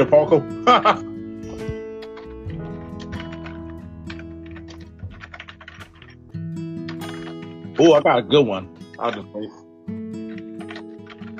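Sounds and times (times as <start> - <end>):
speech: 0.0 - 1.7, 7.8 - 9.6
rapid computer keyboard typing: 1.6 - 6.2, 10.2 - 11.3.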